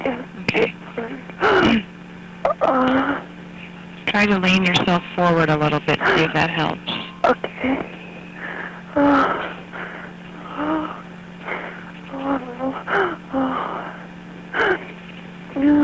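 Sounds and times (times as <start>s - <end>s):
low electrical hum on a phone line: 0.0s - 15.8s
labored painful breathing of a caller in pain during a phone call: 2.6s - 3.4s, 7.4s - 15.0s
speech: 4.2s - 8.0s.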